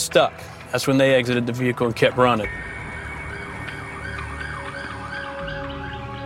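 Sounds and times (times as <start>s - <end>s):
speech: 0.1s - 2.7s
emergency vehicle siren wailing: 2.5s - 6.2s.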